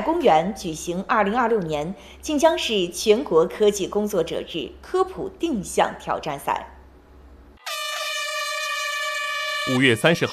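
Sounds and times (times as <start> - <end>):
speech: 0.1 - 6.7, 9.7 - 10.3
air horn blast signalling the start of a science orienteering race at an ecological park: 7.6 - 10.3.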